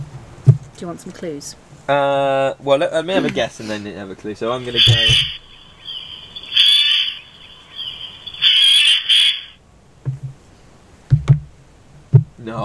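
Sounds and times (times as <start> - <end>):
speech: 0.8 - 5.4
Eurasian jay screeching: 4.5 - 9.6.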